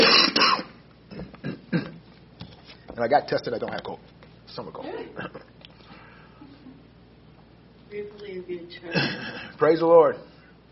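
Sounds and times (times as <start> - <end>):
person clearing their throat: 0.0 - 2.0
person coughing: 0.0 - 2.0, 8.9 - 9.5
speech: 3.0 - 5.6, 7.9 - 10.3.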